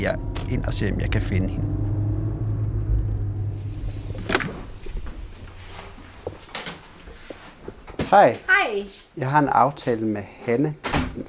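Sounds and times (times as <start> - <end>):
speech: 0.0 - 1.7, 8.1 - 11.2
car engine rumbling: 0.0 - 7.9.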